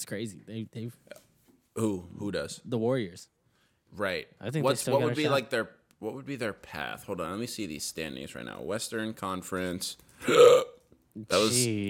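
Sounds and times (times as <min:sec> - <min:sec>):
speech: 0:00.0 - 0:10.6, 0:11.2 - 0:11.8
exaggerated hiccup: 0:10.2 - 0:10.8.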